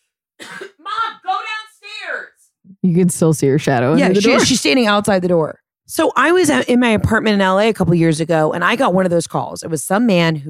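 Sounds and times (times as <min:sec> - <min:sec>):
person clearing throat to shift a bubble from drinking iced coffee: 0:00.4 - 0:00.9
speech: 0:02.8 - 0:10.4.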